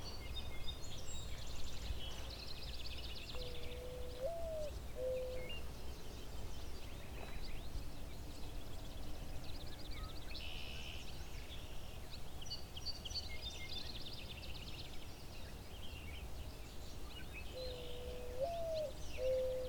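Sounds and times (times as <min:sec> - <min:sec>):
trilling and chattering songs of other birds: 0:00.0 - 0:19.6
mourning dove soft low coo, perched atop bat boxes: 0:03.4 - 0:05.5, 0:17.6 - 0:19.6.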